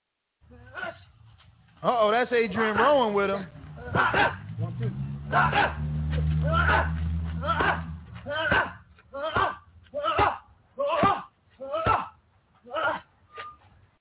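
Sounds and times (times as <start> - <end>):
speech: 1.8 - 6.9
low droning hum: 3.5 - 10.0
boxer's punches smacking into boxing focus pads: 6.5 - 12.1.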